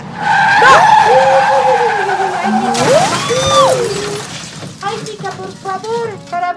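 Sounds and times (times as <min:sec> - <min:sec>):
car tires squealing in a skid: 0:00.0 - 0:04.8
car engine rumbling: 0:00.0 - 0:06.5.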